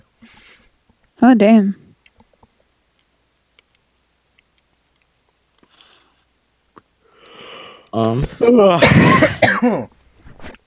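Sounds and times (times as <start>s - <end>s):
speech: 1.2s - 1.8s, 8.0s - 10.0s
man clearing throat: 8.1s - 9.9s
man coughing: 8.2s - 9.9s.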